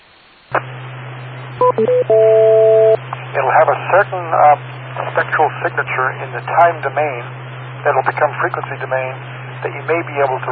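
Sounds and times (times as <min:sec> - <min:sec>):
steady low hum of radio carrier keying up: 0:00.0 - 0:10.5
radio repeater electronic beeps: 0:01.6 - 0:03.0
radio repeater timeout two-note tone: 0:01.6 - 0:03.0
speech: 0:01.6 - 0:10.5
burst of static from radio repeater: 0:03.1 - 0:10.5.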